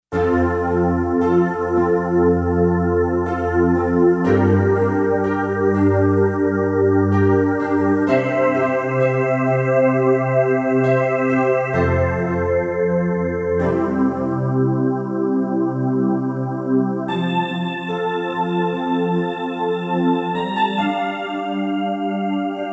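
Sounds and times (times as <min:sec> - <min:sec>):
Roland SC-880 Heaven Piano factory patch: 0:00.1 - 0:22.7.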